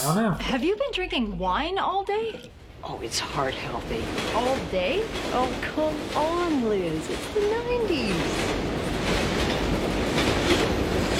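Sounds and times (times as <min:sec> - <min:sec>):
speech: 0:00.0 - 0:08.7
subway train rumbling past a window: 0:03.0 - 0:11.1.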